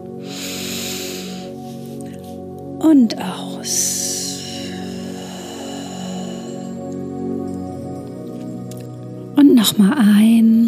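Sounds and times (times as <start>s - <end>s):
sustained musical drone: 0.0s - 10.6s
deep breath drawn in during a guided breathing exercise: 0.2s - 2.5s, 4.1s - 7.4s
speech: 2.8s - 4.0s, 9.4s - 10.6s.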